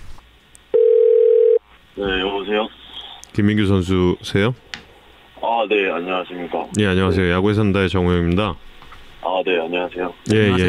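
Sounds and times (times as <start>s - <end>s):
telephone ringback tone: 0.8s - 1.6s
speech: 2.0s - 2.8s, 3.4s - 4.7s, 5.6s - 8.7s, 9.4s - 10.6s.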